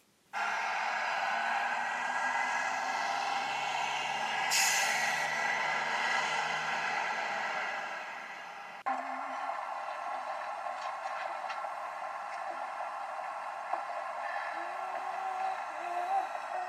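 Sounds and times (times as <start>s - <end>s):
bus air-brake hiss: 0.4s - 6.8s
bus pulling in with steady engine roar: 0.4s - 16.6s.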